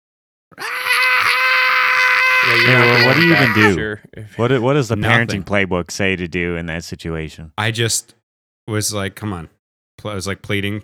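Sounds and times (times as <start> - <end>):
speech: 0.5 - 1.0, 2.5 - 10.8
voice imitating a baby's shrill high-pitched scream: 0.6 - 3.8
laughter: 2.0 - 3.8.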